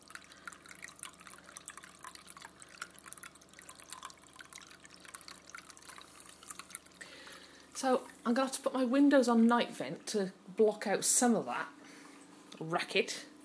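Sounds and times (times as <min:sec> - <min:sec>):
small indoor fountain trickling and dripping: 0:00.0 - 0:08.3
speech: 0:07.8 - 0:11.8, 0:12.6 - 0:13.3.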